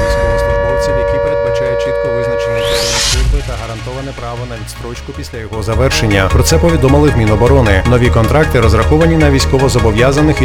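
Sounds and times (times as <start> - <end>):
air raid siren wailing: 0.0 - 3.7
speech: 4.3 - 10.4.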